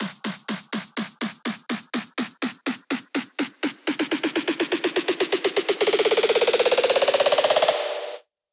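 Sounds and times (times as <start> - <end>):
snare drum roll: 0.0 - 8.2.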